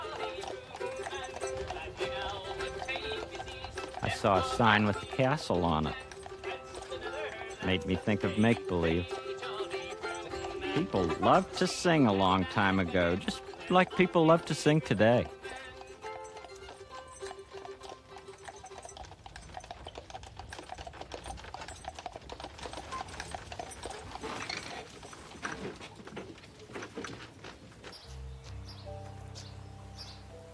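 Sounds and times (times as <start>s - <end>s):
light music: 0.0s - 18.6s, 28.1s - 30.5s
horse hooves clip-clopping pulling a carriage: 0.0s - 30.2s
speech: 4.1s - 6.0s, 7.6s - 9.2s, 10.8s - 15.4s.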